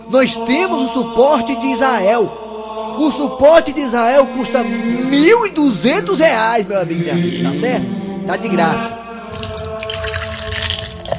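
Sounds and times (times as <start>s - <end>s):
speech: 0.1s - 2.4s, 3.0s - 9.5s
water pouring into a drinking glass at a church: 9.3s - 11.1s.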